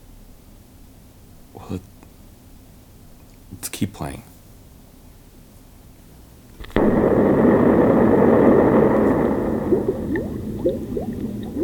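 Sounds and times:
speech: 1.6 - 2.0, 3.6 - 4.3
small bubbly chirps and gurgles: 6.6 - 11.6
steady churning wash: 6.6 - 11.6
sudden loud rushing burst: 6.6 - 11.6.

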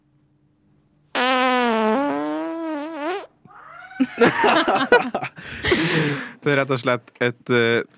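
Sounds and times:
recorded long loud squeaky fart played back: 1.1 - 3.5
laughter: 4.0 - 6.3
speech: 4.0 - 7.9.

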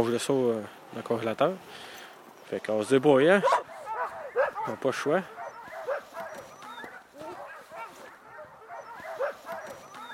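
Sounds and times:
speech: 0.0 - 1.9, 2.5 - 3.6, 4.7 - 5.4
sled dogs barking and whimpering while being harnessed: 3.4 - 10.1.

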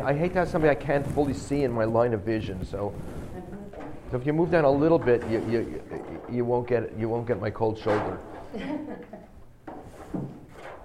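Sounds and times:
speech: 0.0 - 3.5, 4.1 - 9.3
chair being dragged and shifted across a floor: 0.0 - 6.5, 9.7 - 10.8
laughter: 8.5 - 9.4.

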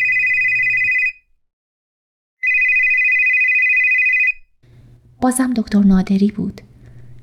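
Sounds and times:
mobile phone ringing with electronic trill: 0.0 - 1.2, 2.4 - 4.5
speech: 5.2 - 6.7.

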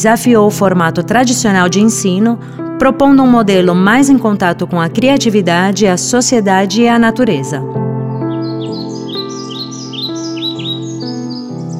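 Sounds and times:
speech: 0.0 - 7.8
bird singing in a tree: 6.6 - 11.7.

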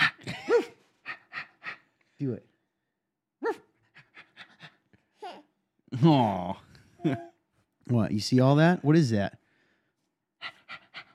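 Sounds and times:
speech: 2.2 - 2.5, 6.0 - 7.3, 7.9 - 9.4
dog panting: 3.9 - 4.9, 10.4 - 11.1.

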